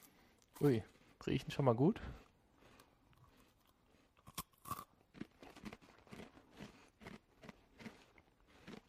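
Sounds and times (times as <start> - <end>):
speech: 0.6 - 2.2
crunchy puff pastry cheese stick being bitten and chewed: 2.6 - 8.8.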